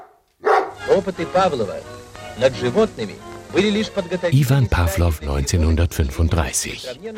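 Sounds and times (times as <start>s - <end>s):
dog barking: 0.0s - 0.8s
speech: 0.8s - 7.1s.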